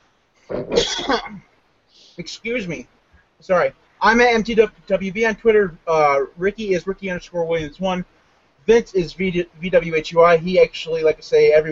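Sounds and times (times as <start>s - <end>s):
person coughing: 0.5s - 1.4s
speech: 0.5s - 1.5s, 2.2s - 8.1s, 8.7s - 11.6s.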